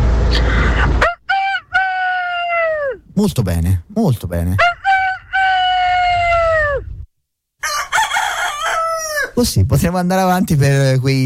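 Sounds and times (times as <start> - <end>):
rough noisy rumble: 0.0 - 1.0
rooster crowing: 1.0 - 3.0, 4.6 - 6.9, 7.6 - 9.4
speech: 3.2 - 4.7, 9.4 - 11.2.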